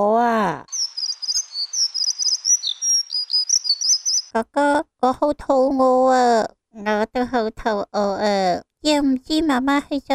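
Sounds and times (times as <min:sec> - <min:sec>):
speech: 0:00.0 - 0:00.7, 0:04.4 - 0:10.1
baby birds chirping and peeping: 0:00.6 - 0:04.4.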